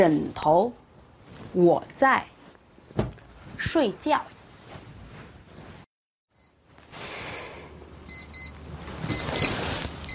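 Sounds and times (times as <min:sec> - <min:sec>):
speech: 0:00.0 - 0:00.8, 0:01.5 - 0:02.4, 0:03.0 - 0:04.4
alarm clock ringing with rapid high electronic beeps: 0:06.3 - 0:10.1.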